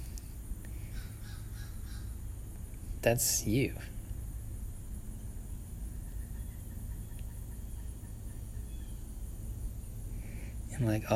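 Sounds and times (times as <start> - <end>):
steady low outdoor rumble: 0.0 - 11.1
crows cawing: 0.8 - 2.2
speech: 3.0 - 4.0, 10.8 - 11.1.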